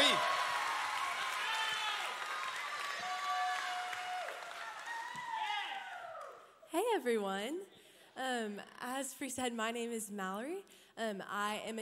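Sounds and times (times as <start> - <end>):
large audience applauding to welcome a speaker: 0.0 - 6.4
whoops and cheers from the audience: 0.0 - 6.6
speech: 6.9 - 11.7.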